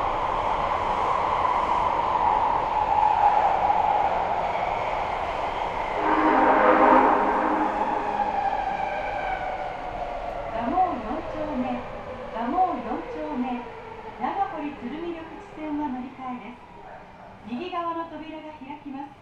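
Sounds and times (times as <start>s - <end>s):
subway train rumbling: 0.0s - 19.2s
subway train tonal whine: 6.0s - 9.9s.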